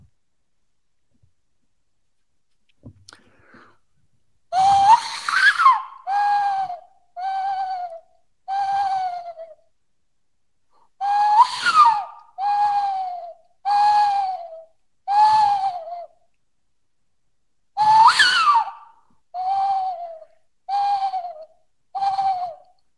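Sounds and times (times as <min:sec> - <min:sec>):
person imitating an owl call with breathy hooting notes: 0:04.6 - 0:09.6, 0:11.0 - 0:16.1, 0:19.4 - 0:22.7.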